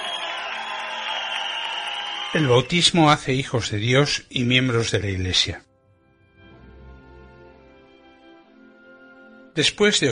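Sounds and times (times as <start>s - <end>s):
crowd applauding loudly: 0.0s - 3.2s
speech: 2.3s - 5.7s, 9.6s - 10.0s.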